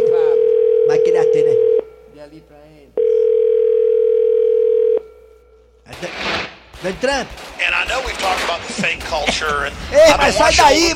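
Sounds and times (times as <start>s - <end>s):
telephone dial tone while a call is being placed: 0.0s - 1.8s, 3.0s - 5.0s
burst of noise: 5.9s - 10.2s
speech: 6.8s - 10.9s
laughter: 8.1s - 10.4s.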